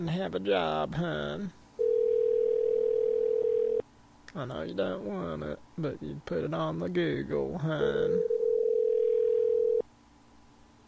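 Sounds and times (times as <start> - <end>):
speech: 0.0 - 1.6, 4.4 - 8.3
faint hiss: 0.0 - 10.8
telephone tone: 1.8 - 3.8, 8.2 - 9.8.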